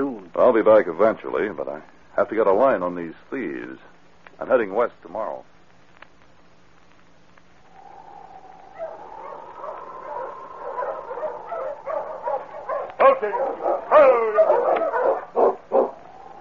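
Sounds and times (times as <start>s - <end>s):
speech: 0.0s - 5.5s, 13.2s - 15.3s
tired sled dog team barking, yipping and whining in the snow: 8.7s - 16.4s.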